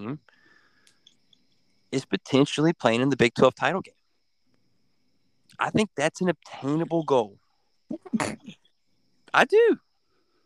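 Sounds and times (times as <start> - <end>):
speech: 0.0 - 0.4, 1.9 - 4.0, 5.6 - 8.6, 9.3 - 9.9
sneeze: 7.9 - 8.6.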